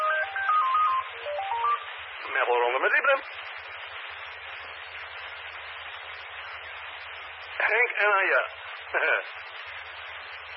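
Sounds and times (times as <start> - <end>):
telephone ringing with a bright electronic ringtone: 0.0 - 1.9
speech: 2.4 - 3.5, 8.0 - 9.5.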